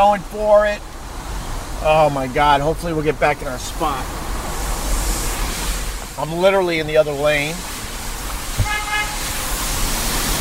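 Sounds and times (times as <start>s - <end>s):
speech: 0.0s - 1.0s, 1.8s - 4.2s, 6.2s - 7.7s
street sweeper rumbling along a street: 0.0s - 10.3s
short car horn toot: 8.5s - 9.5s.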